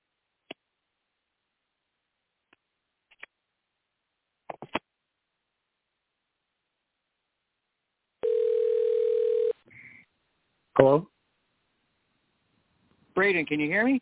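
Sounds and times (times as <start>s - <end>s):
telephone dial tone during an attempt to call someone back: 8.2s - 9.6s
speech: 10.8s - 11.1s, 13.2s - 13.9s.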